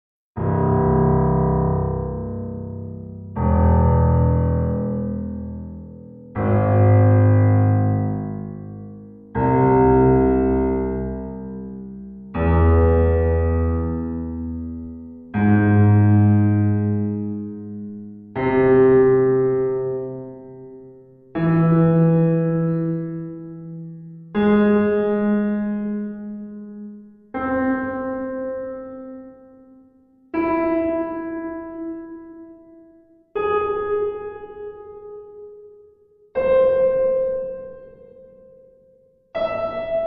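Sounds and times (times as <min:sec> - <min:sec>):
sacred piano music: 0:00.4 - 0:40.0.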